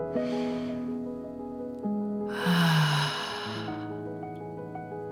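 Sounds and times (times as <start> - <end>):
deep breaths in through the nose and out through the mouth: 0.2 - 1.1, 2.3 - 4.1
gentle sustained musical tones: 0.2 - 5.1.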